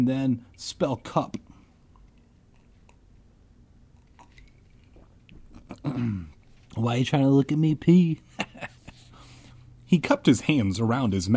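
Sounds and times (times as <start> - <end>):
speech: 0.0 - 1.4, 5.8 - 8.7, 9.9 - 11.3
swallowing clicks: 1.4 - 3.2, 3.9 - 5.9
person sipping a drink: 1.6 - 3.3, 3.9 - 6.7.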